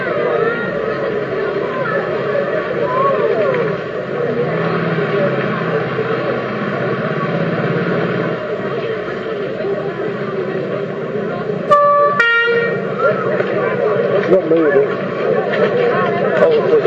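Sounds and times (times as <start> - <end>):
people talking: 0.0 - 16.8
steady rumble of traffic and engine noise: 0.0 - 16.8
fire engine horn following behind an ambulance: 11.6 - 13.1.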